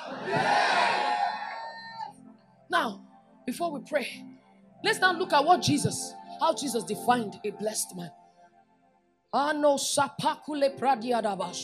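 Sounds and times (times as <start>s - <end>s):
audience screaming and shouting at a sermon: 0.0s - 2.1s
speech: 2.8s - 8.2s, 9.3s - 11.6s.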